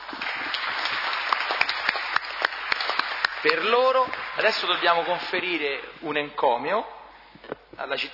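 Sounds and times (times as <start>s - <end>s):
audience applauding: 0.0s - 5.7s
speech: 3.4s - 7.0s, 7.8s - 8.1s.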